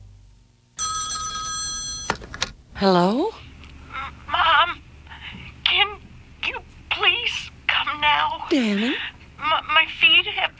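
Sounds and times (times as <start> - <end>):
low room hum: 0.0 - 10.5
telephone bell ringing: 0.8 - 2.3
speech: 2.8 - 3.4, 8.5 - 9.1.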